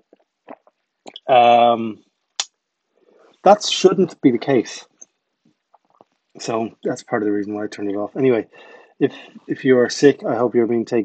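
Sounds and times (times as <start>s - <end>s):
person sipping a drink with wet mouth clicks and slurps: 0.1s - 1.5s
speech: 1.3s - 2.1s, 3.4s - 4.9s, 6.4s - 11.0s.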